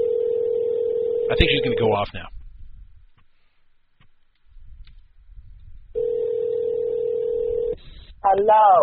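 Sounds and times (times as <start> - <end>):
steady electronic telephone ring tone on a mobile phone call back: 0.0 - 1.9, 6.0 - 7.8
speech: 1.3 - 2.4, 8.3 - 8.8.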